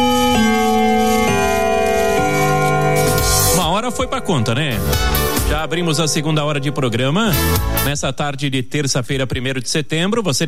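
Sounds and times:
clock bell chiming the hour with rich ringing tones: 0.3s - 7.6s
speech: 4.0s - 10.4s.

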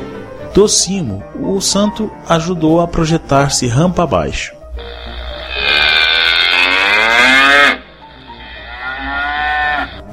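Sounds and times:
speech: 0.5s - 4.9s
cow mooing: 4.8s - 10.1s.

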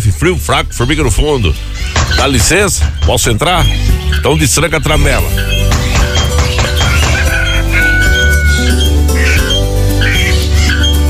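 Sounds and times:
speech: 0.2s - 5.7s
chickens clucking at feeding: 1.3s - 11.0s
rooster crowing: 6.7s - 9.6s.

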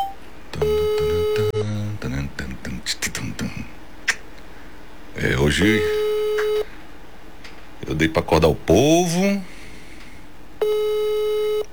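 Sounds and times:
telephone line tone during a call: 0.0s - 1.7s, 5.9s - 6.7s, 10.6s - 11.7s
hiss: 0.0s - 11.7s
speech: 5.2s - 6.0s, 8.0s - 9.5s.

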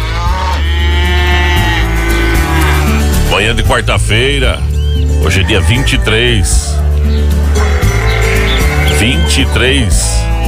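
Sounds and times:
cow mooing: 0.0s - 3.3s, 7.4s - 9.6s
speech: 3.4s - 7.3s, 9.0s - 10.4s.

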